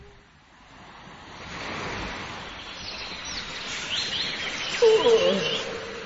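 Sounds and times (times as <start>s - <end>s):
steady ocean surf: 0.0s - 6.0s
large and small seabirds calling over the sea: 2.6s - 6.0s.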